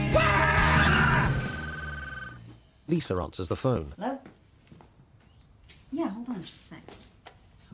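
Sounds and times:
group giving a rebel yell: 0.1s - 1.4s
speech: 2.9s - 4.3s, 5.9s - 7.1s.

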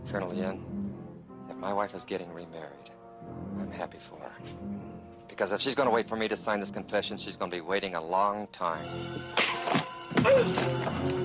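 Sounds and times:
speech: 0.1s - 0.8s, 1.6s - 11.2s
slap across the face: 9.4s - 11.2s.

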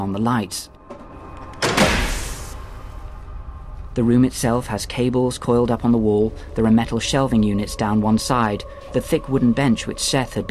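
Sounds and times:
speech: 0.0s - 0.8s, 4.0s - 10.4s
door kicked open into a grimy room: 0.9s - 2.5s.

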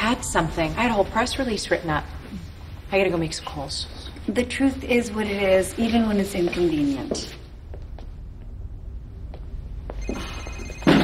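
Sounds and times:
speech: 0.1s - 7.4s
cell phone ringing with a high electronic tone: 10.0s - 11.0s.

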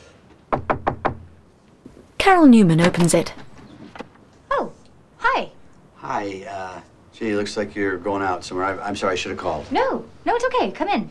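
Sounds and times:
knocking on the front door of a snow-covered suburban house: 0.5s - 1.4s
speech: 2.3s - 3.4s, 6.2s - 11.1s.

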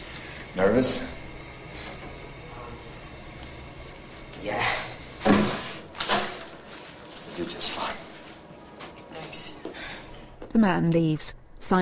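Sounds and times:
tap water running into a sink as a man washes his hands: 0.1s - 6.6s
speech: 0.6s - 1.2s, 10.6s - 11.7s.

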